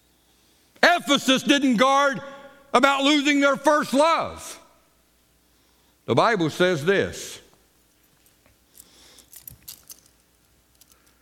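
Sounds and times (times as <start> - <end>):
speech: 1.0 - 4.5, 6.1 - 7.4
bunch of keys jingling: 7.9 - 11.2.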